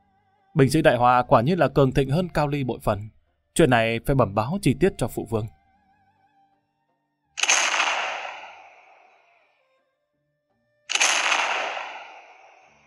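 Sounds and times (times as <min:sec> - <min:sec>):
speech: 0:00.6 - 0:05.6
cannon fire explosions: 0:07.4 - 0:08.8, 0:10.9 - 0:12.8.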